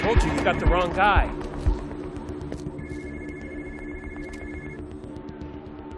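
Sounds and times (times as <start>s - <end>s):
speech: 0.1s - 1.4s
phone under a truck ringing with electronic tone: 2.8s - 4.9s.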